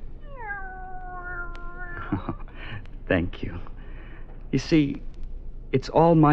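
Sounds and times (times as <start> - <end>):
low rumble: 0.0 - 6.3
cat meowing: 0.2 - 2.3
speech: 3.1 - 3.7, 4.5 - 5.1, 5.7 - 6.3.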